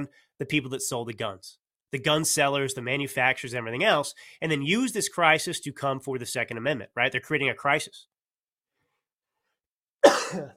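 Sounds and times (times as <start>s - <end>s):
speech: 0.0s - 8.1s, 10.3s - 10.5s
person with a lingering cough coughing: 10.0s - 10.5s.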